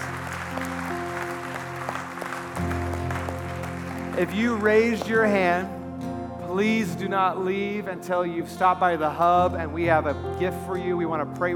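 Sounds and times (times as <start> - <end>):
crowd clapping: 0.0 - 5.7
sustained keyboard or organ chords: 0.0 - 11.5
speech: 4.2 - 5.8, 6.6 - 11.5.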